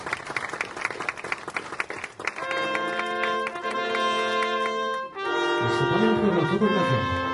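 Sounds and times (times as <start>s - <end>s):
audience applause at an award ceremony: 0.0s - 5.2s
speech: 6.3s - 7.2s.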